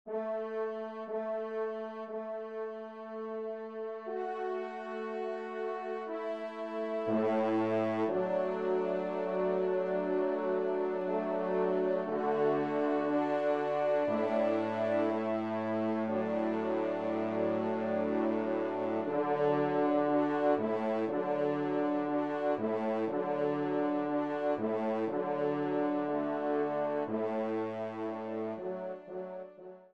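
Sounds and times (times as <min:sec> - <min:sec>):
horn playing a piece: 0:00.1 - 0:29.7.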